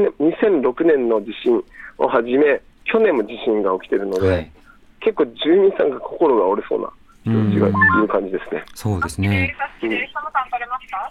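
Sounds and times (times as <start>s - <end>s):
speech: 0.0s - 11.1s
two-way radio intercom transmission with tinny narrow-band voice: 4.2s - 4.5s, 7.3s - 8.0s.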